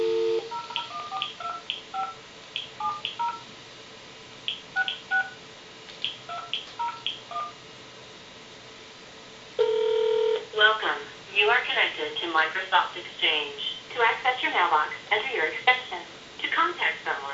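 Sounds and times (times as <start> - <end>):
telephone keypad dual-tone beeps dialing into a unified messaging voicemail system: 0.0 - 2.2, 2.8 - 3.4, 6.3 - 7.6
low steady hum: 0.0 - 17.3.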